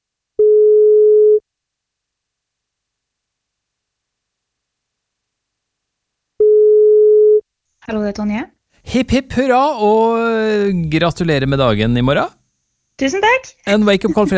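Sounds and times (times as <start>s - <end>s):
telephone ringback tone: 0.4s - 1.4s, 6.4s - 7.4s
speech: 7.9s - 12.4s, 13.0s - 14.3s.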